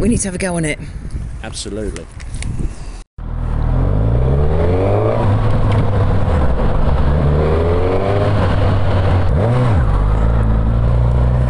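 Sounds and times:
speech: 0:00.0 - 0:02.8
Suzuki motorcycle with a quickshifter accelerating hard with gear changes: 0:03.2 - 0:11.4.

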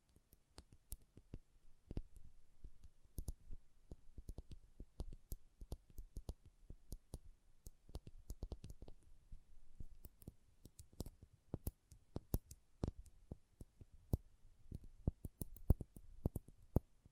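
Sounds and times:
ASMR trigger sharp clicks and light taps: 0:02.8 - 0:09.0, 0:09.8 - 0:16.9.

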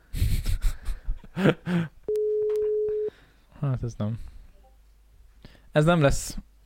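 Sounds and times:
speech: 0:01.4 - 0:02.0, 0:03.6 - 0:04.4, 0:05.8 - 0:06.5
telephone ringing-out tone, clean electronic beep: 0:02.1 - 0:03.1.

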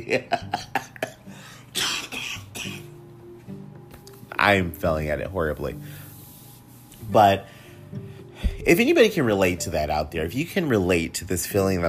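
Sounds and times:
speech: 0:00.0 - 0:00.8, 0:04.4 - 0:05.9, 0:07.1 - 0:08.0, 0:08.6 - 0:11.8
person coughing while trying not to cough: 0:01.0 - 0:02.9.

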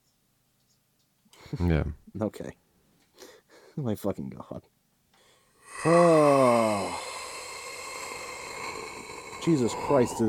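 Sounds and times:
speech: 0:01.5 - 0:02.6, 0:03.8 - 0:04.8, 0:05.8 - 0:07.0, 0:09.4 - 0:10.2
person yawning loudly: 0:05.6 - 0:10.2.

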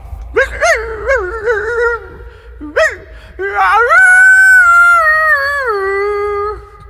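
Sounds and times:
person imitating a dog howling: 0:00.4 - 0:06.7.

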